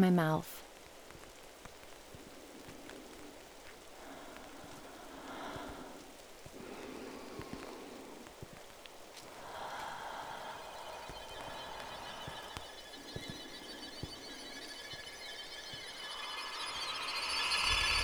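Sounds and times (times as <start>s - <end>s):
speech: 0.0s - 0.6s
steady rain falling with sharp drops tapping: 0.6s - 18.0s.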